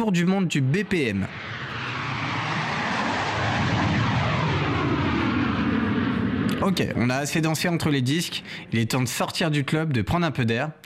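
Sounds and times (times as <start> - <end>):
speech: 0.0 - 1.7, 6.6 - 10.8
loud steady airplane engine roar: 0.0 - 9.1.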